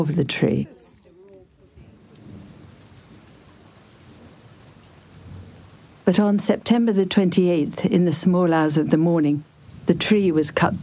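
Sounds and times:
speech: 0.0 - 0.9, 6.1 - 10.8
heavy rain on a stormy night: 0.0 - 10.8
deep thunder rumbling: 1.7 - 10.8.

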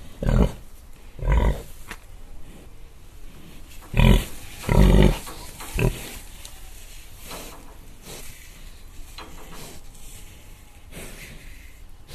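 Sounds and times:
pig grunting: 0.0 - 1.7, 3.9 - 6.2
faint hiss: 0.0 - 12.1.

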